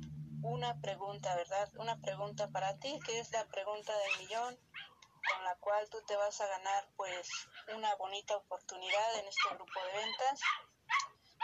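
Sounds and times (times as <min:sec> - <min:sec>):
speech: 0:00.4 - 0:10.7
small dogs barking in high-pitched yaps: 0:04.0 - 0:05.5, 0:08.9 - 0:11.4.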